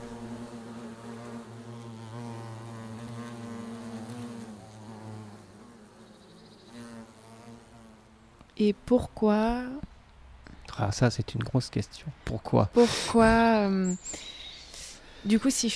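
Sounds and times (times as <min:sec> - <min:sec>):
small wild bees buzzing: 0:00.0 - 0:09.3
speech: 0:08.6 - 0:09.9, 0:10.8 - 0:14.3, 0:15.2 - 0:15.7.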